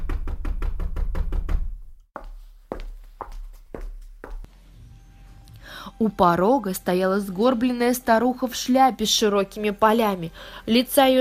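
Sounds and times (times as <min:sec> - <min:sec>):
knocking on a wooden door: 0:00.0 - 0:01.8
speech: 0:06.0 - 0:11.2.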